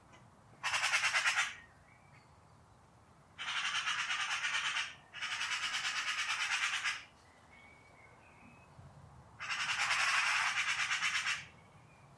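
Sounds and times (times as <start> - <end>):
Eurasian magpie harsh rattling chatter: 0.6 - 1.6, 3.4 - 7.1, 9.4 - 11.5.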